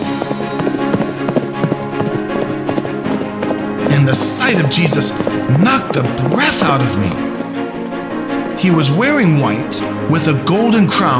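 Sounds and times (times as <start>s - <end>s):
hoofbeats of a white horse galloping at top speed: 0.0s - 10.7s
speech: 4.0s - 7.3s, 8.6s - 11.1s.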